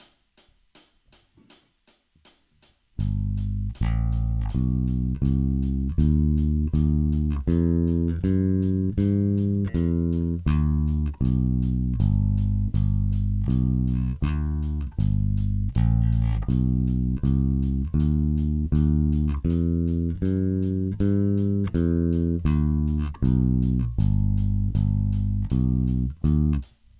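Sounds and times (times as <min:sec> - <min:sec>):
walking bass line: 0:03.0 - 0:26.7.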